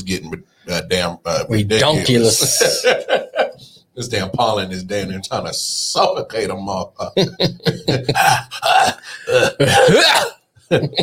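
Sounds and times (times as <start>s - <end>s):
speech: 0.0s - 3.2s, 4.0s - 11.0s
laughter: 2.0s - 3.6s, 7.0s - 11.0s
man clearing his throat with gravelly coughs: 8.0s - 11.0s.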